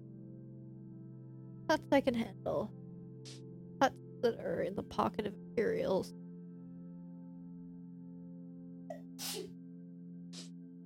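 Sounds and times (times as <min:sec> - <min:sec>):
speech: 0:01.7 - 0:06.2
person sneezing: 0:08.9 - 0:09.5.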